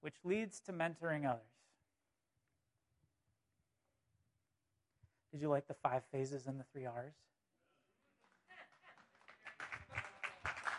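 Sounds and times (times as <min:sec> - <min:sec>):
speech: 0:00.0 - 0:01.6, 0:05.3 - 0:07.3
audience applause: 0:08.5 - 0:10.7.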